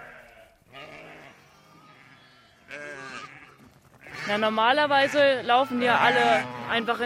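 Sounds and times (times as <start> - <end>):
busy barnyard noise: 0.0 - 7.0
sheep and lambs bleating in a sheep barn: 0.0 - 7.0
speech: 4.3 - 7.0.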